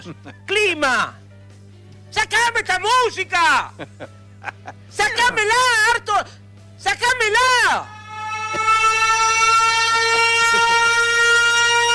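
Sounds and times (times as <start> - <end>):
speech: 0.0 - 1.2, 2.1 - 9.6
laughter: 3.7 - 4.9
alarm siren blaring with a harsh buzzy tone: 7.3 - 11.9.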